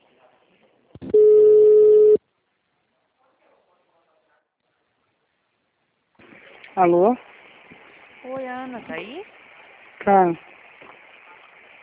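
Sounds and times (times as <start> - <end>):
telephone tone during a call transfer: 1.1 - 2.2
speech: 6.8 - 7.3, 8.7 - 9.4, 10.0 - 10.5.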